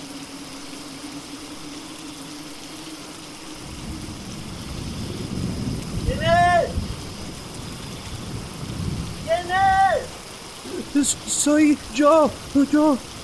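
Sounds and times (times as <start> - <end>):
thunderstorm with heavy rain: 3.3 - 13.2
speech: 11.1 - 13.2.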